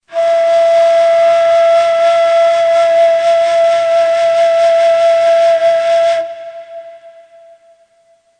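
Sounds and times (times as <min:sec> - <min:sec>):
ney flute: 0:00.1 - 0:08.3.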